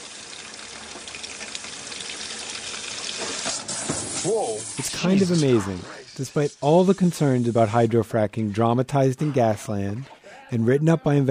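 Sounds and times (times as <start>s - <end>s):
tap water running in a hissing, splashing stream: 0.0s - 8.5s
speech: 4.2s - 11.2s.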